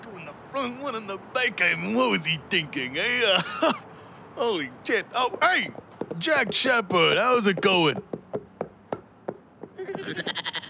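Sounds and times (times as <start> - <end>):
speech: 0.6 - 8.1, 9.8 - 10.4
knocks or steps: 5.4 - 10.4
goat bleating: 9.8 - 10.6.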